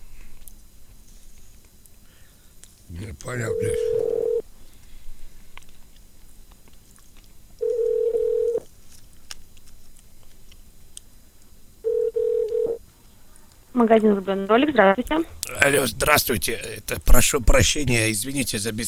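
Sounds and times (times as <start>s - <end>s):
speech: 3.0s - 4.1s, 13.9s - 18.8s
telephone line beeps on a call to a shop's automated phone menu: 3.3s - 4.4s, 7.6s - 8.6s, 11.9s - 12.8s.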